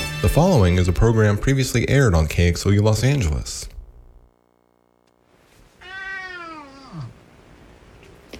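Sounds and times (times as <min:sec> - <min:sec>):
speech: 0:00.2 - 0:03.7
faint hum: 0:00.2 - 0:08.3
cat meow ending in a yawn: 0:05.8 - 0:07.2.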